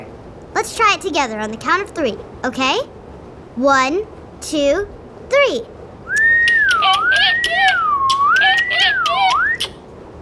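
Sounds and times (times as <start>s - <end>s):
speech: 0.6s - 3.0s, 3.6s - 5.7s
person whistling a wavering tune to scare a leopard seal: 6.1s - 9.7s
sharp clicks: 6.1s - 9.8s.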